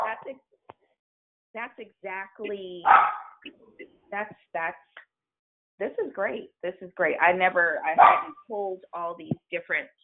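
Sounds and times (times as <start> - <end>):
speech: 0.3 - 0.5, 1.5 - 5.1, 5.8 - 10.0
dog barking and yipping: 2.9 - 3.4, 8.0 - 8.4.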